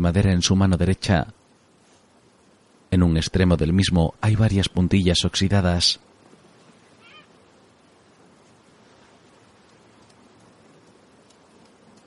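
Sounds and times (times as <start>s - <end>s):
speech: 0.0s - 1.4s, 2.9s - 6.1s
steady dense hiss of rain or surf: 0.0s - 12.0s
seagull crying: 7.0s - 7.4s.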